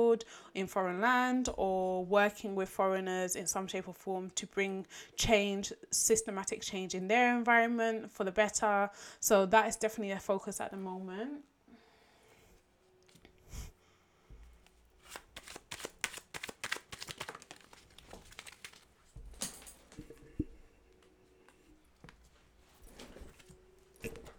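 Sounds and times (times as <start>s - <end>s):
speech: 0.0s - 11.5s
tarot cards being shuffled and handled: 14.6s - 19.7s.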